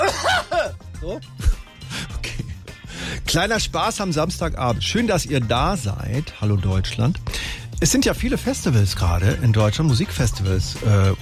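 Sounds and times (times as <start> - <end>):
person clearing throat: 0.0 - 0.8
person faking exaggerated coughs: 0.0 - 0.8
speech: 1.0 - 1.5, 3.3 - 11.1.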